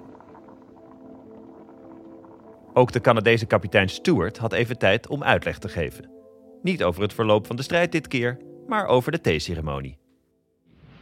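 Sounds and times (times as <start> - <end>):
water boiling in a small pan: 0.0 - 4.1
speech: 2.8 - 10.0.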